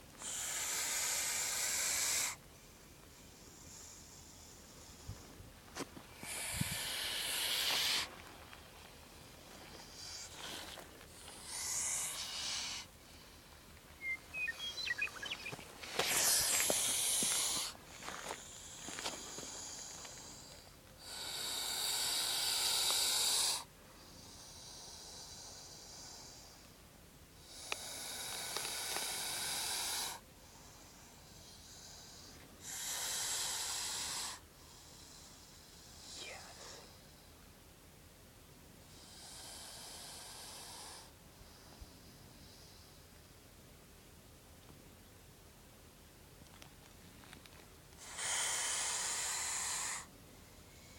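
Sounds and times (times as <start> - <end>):
snake hissing: 0.2 - 5.2, 6.1 - 8.2, 9.1 - 13.6, 14.8 - 26.7, 27.4 - 37.3, 38.9 - 42.9, 48.0 - 50.9.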